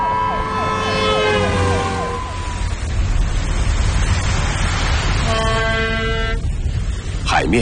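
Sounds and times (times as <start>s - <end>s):
police car siren wailing: 0.0s - 3.2s
rumbling traffic: 0.0s - 7.6s.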